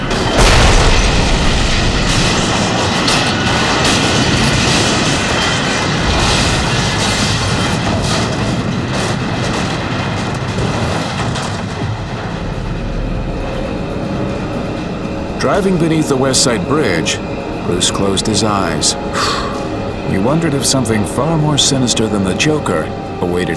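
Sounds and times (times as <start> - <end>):
subway train slamming into an end-of-line barricade with a heavy boom: 0.0 - 17.6
loud sustained roar of rumbling and grinding metal: 0.0 - 23.5
speech: 15.4 - 19.4, 20.1 - 23.5.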